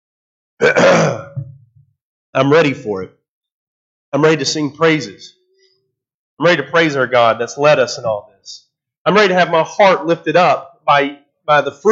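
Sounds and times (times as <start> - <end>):
person coughing before speaking at a church service: 0.6 - 1.6
speech: 2.3 - 3.2, 4.1 - 5.4, 6.4 - 11.9.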